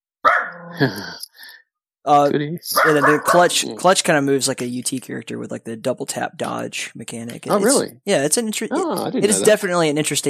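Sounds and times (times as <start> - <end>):
puppy barking: 0.2 - 0.8, 2.8 - 3.5
puppy yipping: 0.3 - 0.7
speech: 0.6 - 1.3, 2.0 - 10.2.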